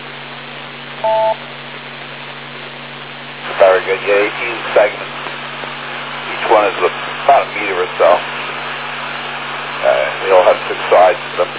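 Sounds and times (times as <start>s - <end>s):
constant hiss: 0.0s - 11.5s
telephone keypad beep: 1.0s - 1.4s
speech: 1.0s - 1.6s, 3.9s - 5.2s.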